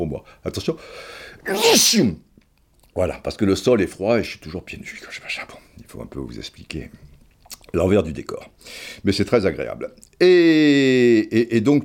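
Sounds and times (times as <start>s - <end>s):
speech: 0.0s - 2.3s, 3.0s - 7.1s, 7.7s - 11.8s
person sneezing: 1.5s - 2.1s.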